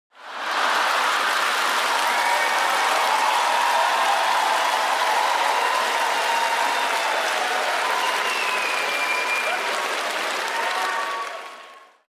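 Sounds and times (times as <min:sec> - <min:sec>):
applause: 0:00.1 - 0:12.1
crowd laughing: 0:00.2 - 0:01.9.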